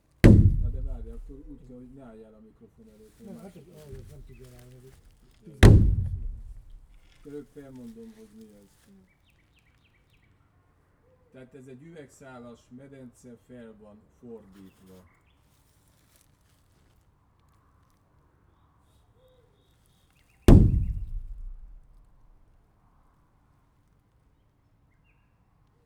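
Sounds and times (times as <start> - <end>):
kick against a plastic pool: 0.2 - 2.1, 3.2 - 5.0, 5.6 - 7.4, 20.5 - 22.4.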